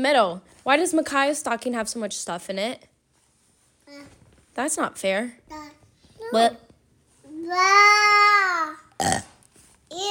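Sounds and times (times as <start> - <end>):
speech: 0.0 - 2.9, 3.9 - 6.6, 7.4 - 9.3, 9.9 - 10.1
long drawn-out burp: 9.0 - 9.4.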